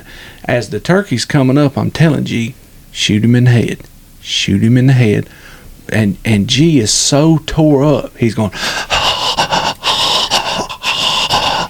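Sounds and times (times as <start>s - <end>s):
speech: 0.3s - 9.0s
voice imitating heavy nervous breathing of a hunter: 8.5s - 11.6s.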